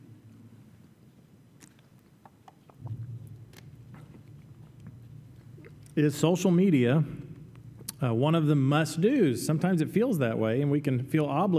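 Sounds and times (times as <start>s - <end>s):
low steady rumble: 0.0s - 9.6s
quiet sipping of water: 1.7s - 6.0s
speech: 6.0s - 7.2s, 8.0s - 11.5s.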